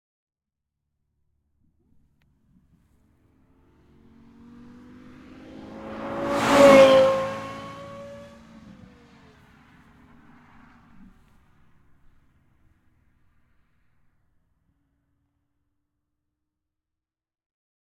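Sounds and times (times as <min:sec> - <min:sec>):
Lexus LFA 4.8 V10 sports car passing fast at high rpm: 0:03.0 - 0:12.1.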